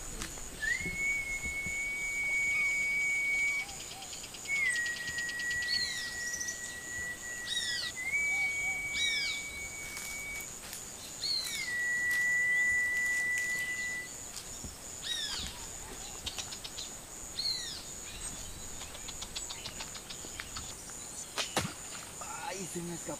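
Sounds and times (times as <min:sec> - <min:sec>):
birds chirping outdoors: 0:00.0 - 0:23.1
faint insects buzzing outdoors: 0:00.0 - 0:23.1
person whistling long high notes to call fish: 0:00.6 - 0:03.8, 0:04.5 - 0:10.5, 0:11.5 - 0:14.1.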